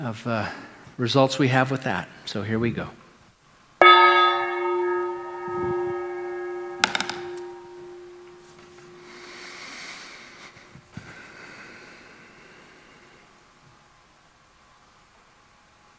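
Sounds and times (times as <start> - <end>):
speech: 0.0 - 3.0
gong being struck: 3.8 - 9.4.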